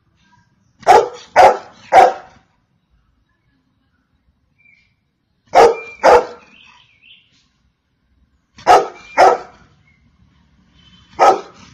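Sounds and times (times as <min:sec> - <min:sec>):
golden retriever barking: 0:00.8 - 0:02.5, 0:05.5 - 0:06.6, 0:08.6 - 0:09.7, 0:11.1 - 0:11.7.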